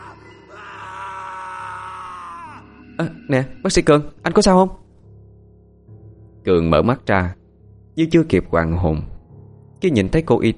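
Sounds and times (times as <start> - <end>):
man screaming loudly in terror: 0.0 - 3.0
speech: 3.0 - 4.8, 6.4 - 7.4, 8.0 - 9.1, 9.8 - 10.5.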